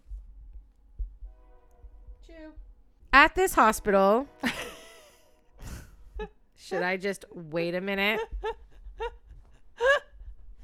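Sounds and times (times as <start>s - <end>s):
train horn: 1.2s - 2.6s, 3.8s - 5.5s
speech: 2.3s - 4.7s, 6.2s - 9.1s.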